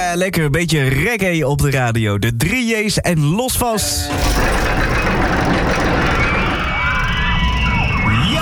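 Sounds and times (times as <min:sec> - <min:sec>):
speech: 0:00.2 - 0:05.4
roller coaster running at an amusement park: 0:04.0 - 0:08.4.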